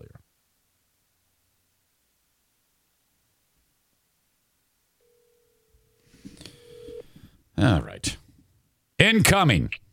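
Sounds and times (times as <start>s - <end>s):
telephone dial tone: 5.0s - 7.3s
electronic beeps of telephone number dialing: 6.5s - 7.2s
speech: 7.6s - 8.2s, 9.1s - 9.8s.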